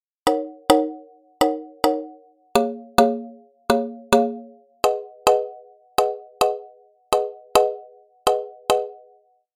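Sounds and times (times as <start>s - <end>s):
reggaeton rhythm chords: 0.3s - 7.8s.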